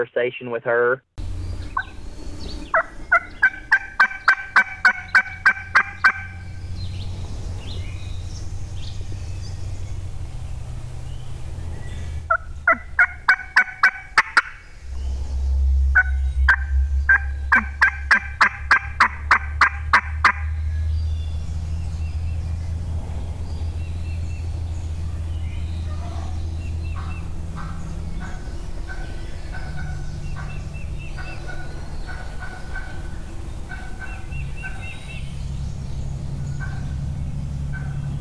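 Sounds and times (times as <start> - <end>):
speech: 0.0 - 1.1
low rumbling background: 0.0 - 38.1
wild turkey hen yelping: 1.7 - 1.9, 2.7 - 6.4, 12.3 - 14.6, 16.0 - 20.5, 27.0 - 35.0, 37.7 - 38.0.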